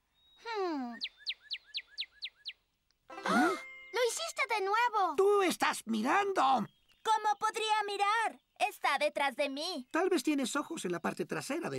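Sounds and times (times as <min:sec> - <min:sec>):
red songbird with black-masked head singing: 0:00.0 - 0:11.7
speech: 0:04.6 - 0:06.8, 0:07.5 - 0:11.7.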